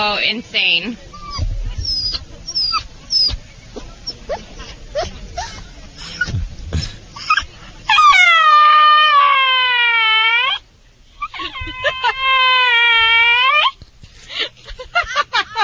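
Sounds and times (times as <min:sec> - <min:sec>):
speech: 0:00.0 - 0:01.1
dog whining and talking: 0:01.1 - 0:06.4, 0:07.2 - 0:10.6, 0:11.2 - 0:13.8
laughter: 0:03.8 - 0:07.5, 0:11.2 - 0:13.3, 0:14.3 - 0:15.6.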